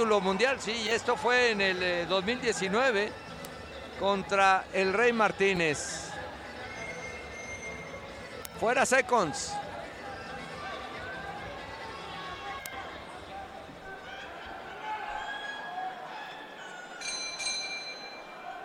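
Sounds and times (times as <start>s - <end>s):
speech: 0.0s - 3.3s, 4.0s - 6.1s, 8.6s - 9.6s
loud arena crowd: 0.0s - 18.6s
boxing ring bell ringing: 17.0s - 18.4s.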